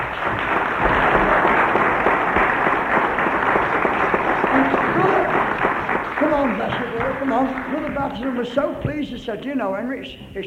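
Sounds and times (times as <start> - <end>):
audience applause at a church revival gathering: 0.0 - 8.7
scattered voices: 4.3 - 10.4
speech: 6.6 - 10.4.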